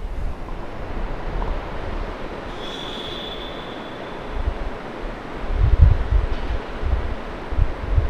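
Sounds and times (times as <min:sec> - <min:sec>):
New York city street traffic noise through an open window: 0:00.4 - 0:08.0
brief high squeal: 0:02.5 - 0:05.4.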